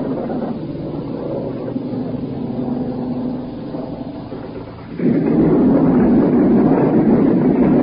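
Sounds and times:
airplane passing overhead at night over the port side of a ship: 0:00.0 - 0:07.8.

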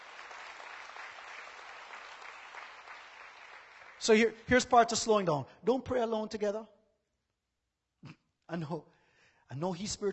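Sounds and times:
crowd at a sermon applauding: 0:00.0 - 0:04.4
speech: 0:04.0 - 0:06.8, 0:08.0 - 0:08.9, 0:09.5 - 0:10.1.

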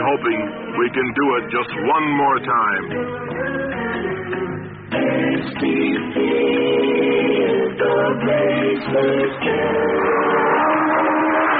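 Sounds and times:
speech: 0:00.1 - 0:03.6, 0:04.9 - 0:10.0
STP-sponsored race car engine revving with gear shifts: 0:10.0 - 0:11.5.

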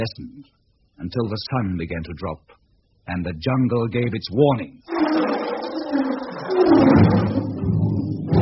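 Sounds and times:
speech: 0:00.0 - 0:07.1
lion roaring: 0:04.9 - 0:08.3.

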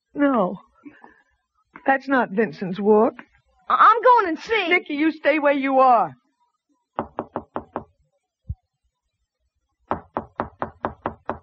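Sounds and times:
speech: 0:00.2 - 0:00.7, 0:01.9 - 0:06.2
police knocking firmly on a door: 0:07.0 - 0:08.0, 0:09.9 - 0:11.4.

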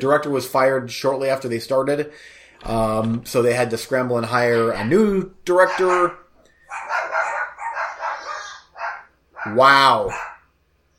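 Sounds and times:
speech: 0:00.0 - 0:06.9, 0:09.4 - 0:10.3
two dogs barking in yelping barks: 0:04.7 - 0:10.5.

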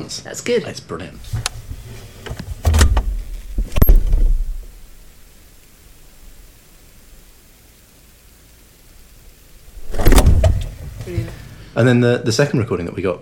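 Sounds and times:
speech: 0:00.0 - 0:01.6, 0:11.8 - 0:13.2
fridge door shutting with a clunk: 0:01.2 - 0:04.8, 0:09.8 - 0:11.5
handling noise: 0:01.2 - 0:06.9, 0:09.5 - 0:11.6
camera flash recharging hum: 0:01.2 - 0:11.7.

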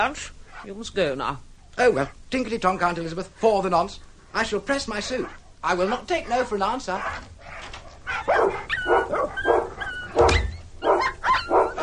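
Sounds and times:
speech: 0:00.0 - 0:07.4, 0:08.1 - 0:10.3
dogs barking in sharp yapping bursts: 0:04.9 - 0:11.8.

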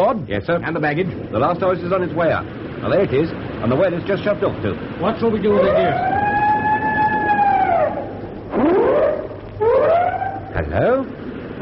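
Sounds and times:
speech: 0:00.0 - 0:06.2, 0:10.6 - 0:11.2
ship's siren sounded as a signal: 0:05.0 - 0:11.2
ship's siren rising whoops: 0:05.6 - 0:10.4.

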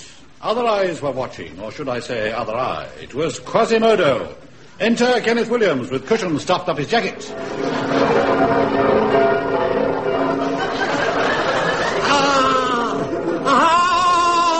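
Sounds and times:
speech: 0:00.4 - 0:09.0
church bells ringing: 0:06.9 - 0:14.5
people laughing: 0:10.2 - 0:14.5.

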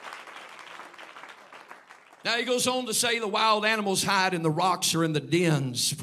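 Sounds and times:
audience clapping hands: 0:00.0 - 0:02.6
speech: 0:02.2 - 0:06.0.

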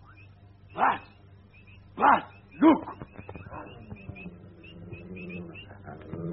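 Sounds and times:
low steady hum: 0:00.0 - 0:06.3
dog barking: 0:00.8 - 0:01.2, 0:02.0 - 0:03.9.

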